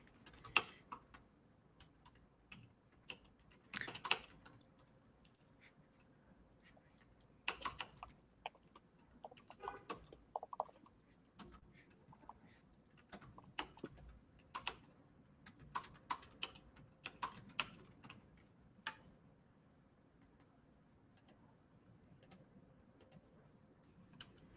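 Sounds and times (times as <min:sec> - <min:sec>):
typing on a computer keyboard: 0:00.0 - 0:04.9, 0:07.4 - 0:19.0, 0:21.1 - 0:21.4, 0:22.2 - 0:24.5.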